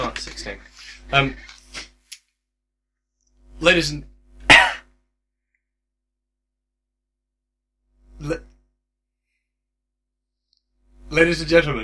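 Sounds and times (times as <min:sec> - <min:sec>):
speech: 0:00.4 - 0:01.5, 0:03.6 - 0:04.1, 0:11.2 - 0:11.8
man coughing: 0:04.5 - 0:04.9.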